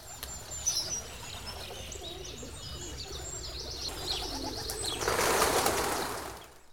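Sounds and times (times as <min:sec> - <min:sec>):
birds chirping in a spring morning chorus outdoors: 0:00.0 - 0:06.7
wing flapping or rustling: 0:03.9 - 0:06.7.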